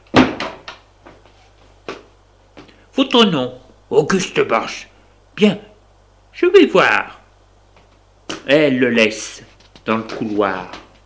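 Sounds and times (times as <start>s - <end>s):
door swinging shut with a loud close thud: 0.1s - 0.6s
speech: 3.0s - 5.7s, 6.4s - 7.2s, 8.4s - 10.8s.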